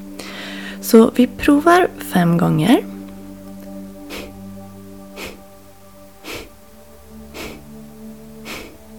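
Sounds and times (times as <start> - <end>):
quiet passive inhales: 0.2 - 0.8, 4.0 - 4.4, 5.1 - 5.5, 6.2 - 6.6, 7.3 - 7.7, 8.4 - 8.8
speech: 0.8 - 2.9
sharp forceful breaths pushed out through the nose: 4.0 - 4.5, 5.1 - 5.5, 6.2 - 6.6, 7.3 - 7.8, 8.4 - 8.8.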